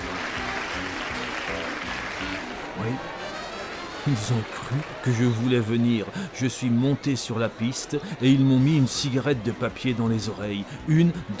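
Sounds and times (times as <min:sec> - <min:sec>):
circus audience applause: 0:00.0 - 0:06.4
speech: 0:02.8 - 0:03.2, 0:04.0 - 0:11.3.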